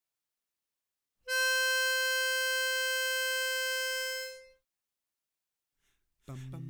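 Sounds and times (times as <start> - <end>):
lead melody: 1.3 - 4.5.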